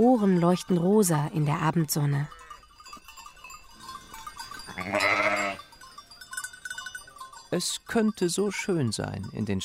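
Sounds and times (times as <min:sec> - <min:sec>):
speech: 0:00.0 - 0:02.4, 0:07.5 - 0:09.6
dark brown and white sheep bleating on a steep slope in the Swiss mountains: 0:04.7 - 0:05.6
faint sheep bleats: 0:04.8 - 0:05.6.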